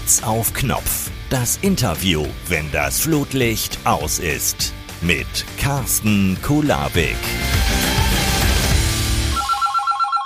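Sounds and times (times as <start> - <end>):
loud dense burst of music-like sound: 0.0 - 9.4
speech: 0.1 - 7.6
telephone ringing with a warbling two-tone trill: 9.3 - 10.2.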